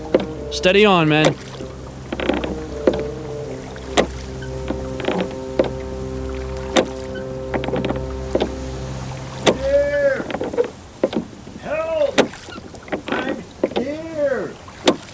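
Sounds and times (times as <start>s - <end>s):
person calling for help: 0.0s - 1.6s, 9.5s - 10.4s, 11.6s - 12.2s
low constant hum: 0.0s - 11.7s
rowboat oars splashing through water: 0.0s - 15.1s
speech: 0.5s - 1.5s.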